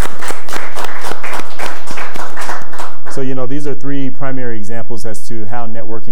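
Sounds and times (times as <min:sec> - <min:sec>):
crowd applause: 0:00.0 - 0:03.2
speech: 0:03.2 - 0:06.1.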